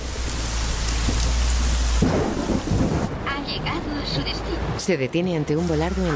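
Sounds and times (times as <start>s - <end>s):
heavy rain pouring: 0.0s - 6.1s
deep rumble of thunder: 0.2s - 3.6s
speech: 3.4s - 6.1s.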